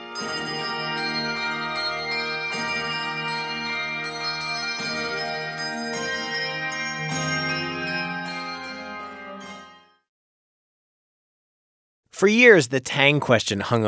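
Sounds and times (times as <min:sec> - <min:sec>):
handbell ensemble playing Malmark bells: 0:00.0 - 0:10.0
speech: 0:12.2 - 0:13.8.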